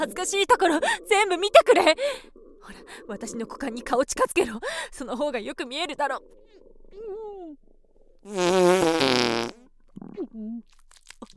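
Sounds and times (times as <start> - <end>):
speech: 0.0 - 7.6, 8.2 - 11.3
fart: 8.3 - 10.3.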